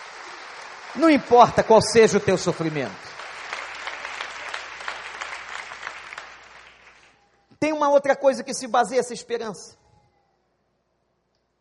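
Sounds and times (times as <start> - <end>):
audience applauding: 0.0 - 7.4
speech: 0.9 - 3.1, 8.0 - 9.8.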